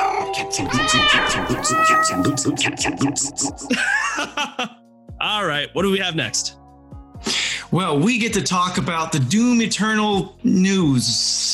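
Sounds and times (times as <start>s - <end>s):
speech: 0.4s - 6.6s, 7.2s - 11.5s
loud drawn-out cat meows: 0.6s - 2.6s
laughter: 1.1s - 4.7s.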